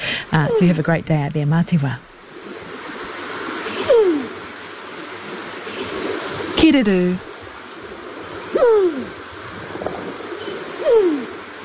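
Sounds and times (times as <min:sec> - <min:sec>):
surf: 0:00.0 - 0:11.6
wind rushing: 0:00.0 - 0:11.6
speech: 0:00.3 - 0:02.1, 0:06.7 - 0:07.3
New Zealand pigeon kererū cooing: 0:03.7 - 0:04.4, 0:08.5 - 0:09.2, 0:10.4 - 0:11.4.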